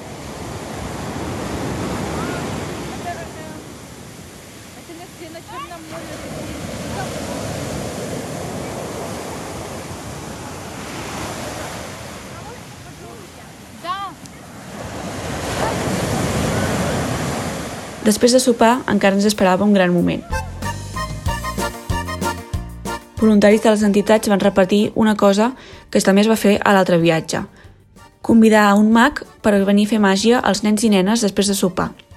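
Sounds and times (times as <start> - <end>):
ocean waves breaking on the shore: 0.0 - 20.4
speech: 18.1 - 20.4, 23.2 - 27.6, 28.2 - 32.0.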